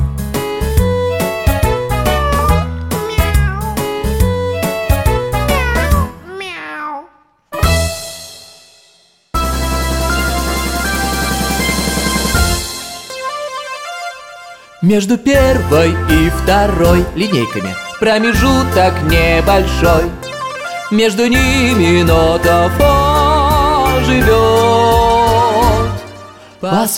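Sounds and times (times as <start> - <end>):
bright melodic tune: 0.8 - 6.2, 9.4 - 14.8, 15.4 - 26.4
meow-like cry: 1.4 - 3.9, 4.7 - 7.2
speech: 14.9 - 20.2, 20.9 - 23.1, 24.0 - 25.2, 26.6 - 26.9.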